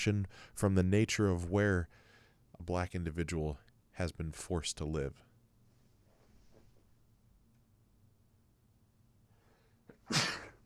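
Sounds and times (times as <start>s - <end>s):
speech: 0.0s - 2.0s, 2.6s - 5.3s
person sneezing: 9.9s - 10.6s.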